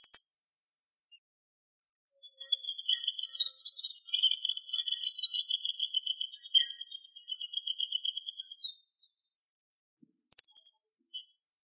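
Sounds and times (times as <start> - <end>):
bird singing a high evenly pulsed trill: 2.2 - 8.8, 10.3 - 11.3
very high buzzy bird call: 2.3 - 8.6.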